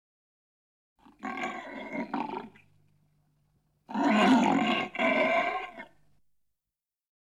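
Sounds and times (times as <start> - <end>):
tiger roaring: 1.0 - 2.6, 3.9 - 6.0.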